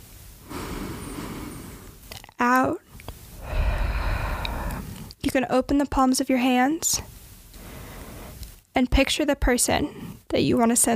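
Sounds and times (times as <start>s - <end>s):
deep breath in through the nose: 0.4s - 2.1s, 3.4s - 5.2s, 7.6s - 8.6s
speech: 2.4s - 2.8s, 5.3s - 7.2s, 8.8s - 10.9s.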